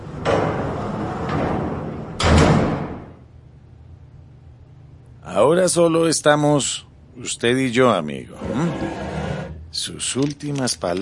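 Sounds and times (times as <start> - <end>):
door closing with a solid low thud: 0.2 - 3.2
speech: 5.3 - 9.1, 9.7 - 11.0.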